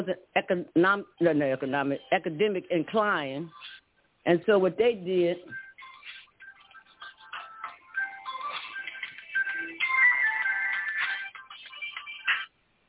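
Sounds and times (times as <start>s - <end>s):
speech: 0.0s - 5.6s
mobile phone ringtone with bright melodic electronic tune: 5.6s - 12.3s.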